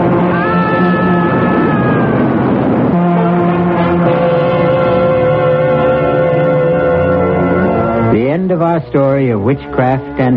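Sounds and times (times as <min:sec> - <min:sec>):
express train horn blaring: 0:00.0 - 0:08.2
southbound express train wheels and engine rumbling past at a station: 0:00.0 - 0:10.3
speech: 0:08.8 - 0:10.3.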